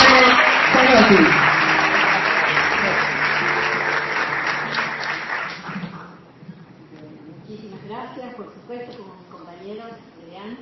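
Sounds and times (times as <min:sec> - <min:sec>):
audience applause at an award ceremony: 0:00.0 - 0:06.2
speech: 0:01.1 - 0:01.4.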